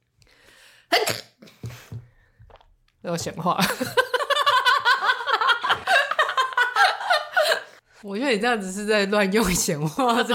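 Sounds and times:
single sharp explosive sneeze: 0.9 - 1.4
speech: 3.0 - 4.1, 8.0 - 10.3
laughter: 3.6 - 7.8.

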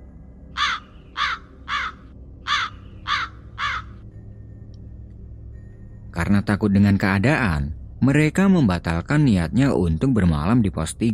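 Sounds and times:
low rumble: 0.0 - 11.1
crow cawing: 0.6 - 4.0
speech: 6.3 - 11.1.

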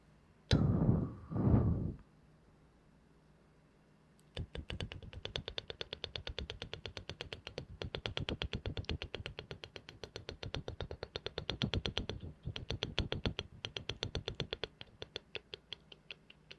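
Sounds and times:
heavy breaths or puffs into the microphone: 0.5 - 2.0
wet mouth clicks and pops: 4.2 - 16.5.

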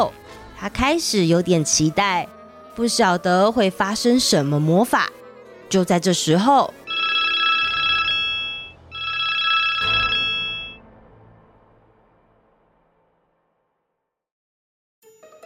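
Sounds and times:
speech: 0.0 - 6.8
home telephone ringing in long electronic bursts: 6.8 - 10.8.

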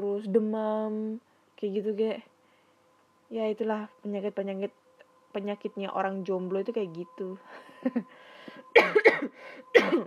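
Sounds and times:
faint steady hum: 0.0 - 10.0
speech: 0.1 - 2.3, 3.3 - 10.0
person coughing: 8.7 - 10.0.

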